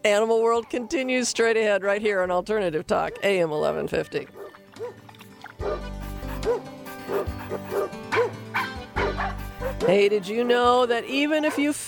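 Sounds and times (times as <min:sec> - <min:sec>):
speech: 0:00.0 - 0:05.0, 0:05.6 - 0:08.0, 0:09.8 - 0:11.8
steady low musical bed: 0:02.2 - 0:11.8
several dogs barking in short loud bursts: 0:04.3 - 0:10.0, 0:11.3 - 0:11.8
higher dog yips: 0:05.6 - 0:09.9.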